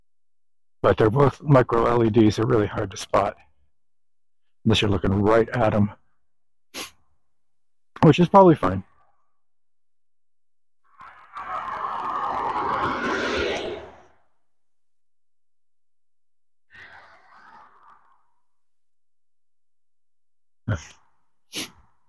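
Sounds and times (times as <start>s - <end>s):
speech: 0.8s - 3.5s, 4.6s - 6.0s, 8.0s - 8.9s, 20.8s - 21.0s
cars passing by on road: 11.4s - 14.1s.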